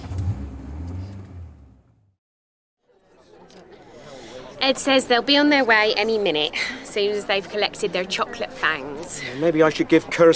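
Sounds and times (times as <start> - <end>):
car engine revving and pulling away: 0.0 - 2.1
speech: 4.6 - 10.3.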